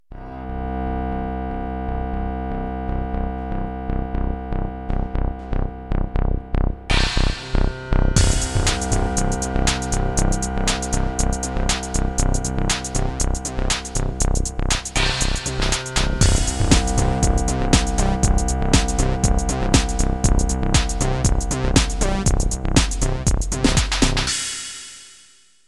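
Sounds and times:
progressive music intro: 0.1 - 25.6.

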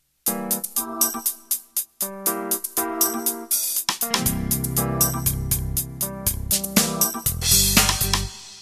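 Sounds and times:
fusion music intro: 0.3 - 8.4.

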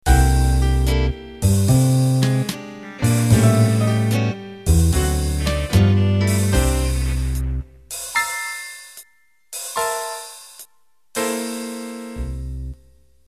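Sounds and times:
big band ballad ending: 0.1 - 7.6.

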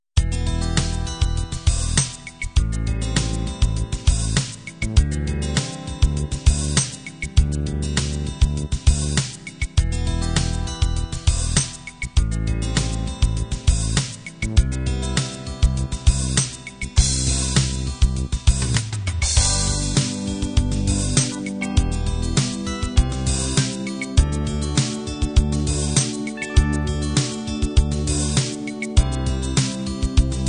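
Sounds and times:
groove ballad music: 0.2 - 30.4.

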